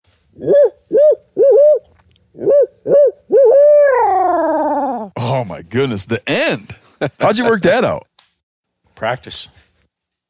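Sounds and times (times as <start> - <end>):
man imitating a hoot owl with his voice: 0.3 - 5.2
speech: 0.4 - 0.6, 5.7 - 8.1, 9.0 - 9.6.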